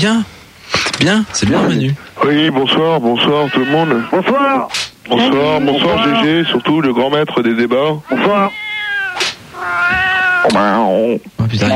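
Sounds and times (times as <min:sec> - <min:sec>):
speech: 0:00.0 - 0:00.3, 0:01.0 - 0:08.6, 0:10.4 - 0:11.7
cat meowing and yowling: 0:03.2 - 0:06.8, 0:08.0 - 0:11.0.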